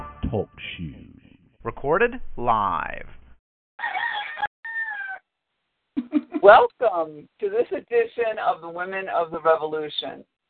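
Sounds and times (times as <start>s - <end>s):
speech: 0.3s - 3.2s, 6.4s - 10.3s
rooster crowing: 3.8s - 5.3s
laughter: 6.0s - 6.5s.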